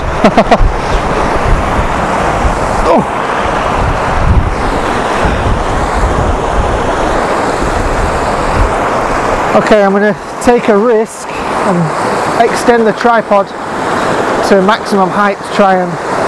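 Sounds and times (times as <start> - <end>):
wind buffeting the microphone: 0.0 - 12.5
strong wind on an exposed coast: 0.0 - 16.2
surf roaring on an exposed coast: 0.0 - 16.2
speech: 0.2 - 0.9, 2.9 - 3.2, 9.5 - 16.0.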